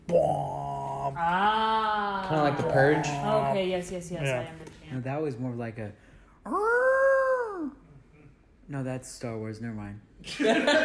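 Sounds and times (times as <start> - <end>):
voice imitating a World War II air raid siren: 0.0 - 1.8, 2.7 - 3.6, 6.5 - 7.8
speech: 1.1 - 6.7, 8.7 - 10.8.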